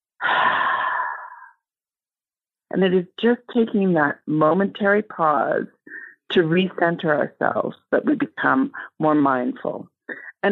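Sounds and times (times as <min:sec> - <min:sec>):
person taking a deep breath during a mindfulness talk: 0:00.2 - 0:01.6
speech: 0:02.8 - 0:10.5.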